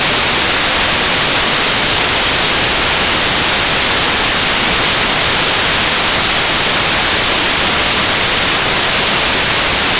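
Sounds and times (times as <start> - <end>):
white noise: 0.0 - 9.9.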